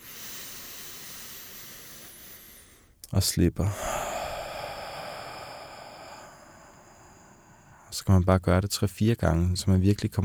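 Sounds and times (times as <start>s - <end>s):
deep slow inhalation through the nose: 0.0s - 3.0s, 3.7s - 7.9s
speech: 3.1s - 3.9s, 8.0s - 10.2s.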